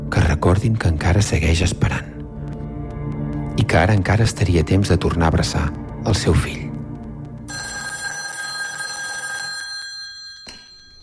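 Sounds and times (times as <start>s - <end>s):
speech: 0.3s - 2.1s, 3.7s - 6.7s
old-style telephone bell ringing with a bright metallic jangle: 7.5s - 11.0s.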